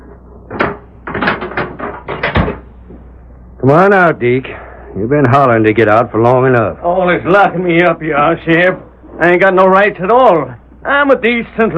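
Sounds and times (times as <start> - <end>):
heavy jail cell door unlocked and pulled open: 0.5 - 2.6
speech: 3.6 - 11.7.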